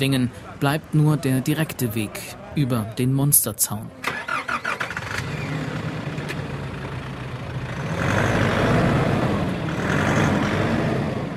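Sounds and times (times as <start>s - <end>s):
speech: 0.0s - 4.3s
off-road vehicle engine running: 4.1s - 11.3s.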